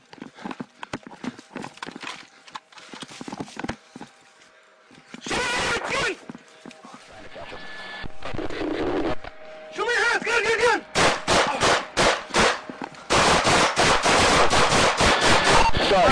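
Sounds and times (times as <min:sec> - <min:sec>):
loud shouting voices: 0:05.2 - 0:06.2, 0:09.8 - 0:11.9
rapid volley of gunshots in police body camera footage: 0:10.9 - 0:16.0.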